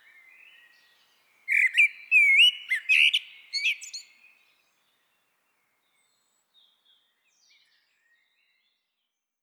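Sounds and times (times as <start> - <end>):
Common blackbird whistles and chirps, Turdus merula: 1.5 - 4.1.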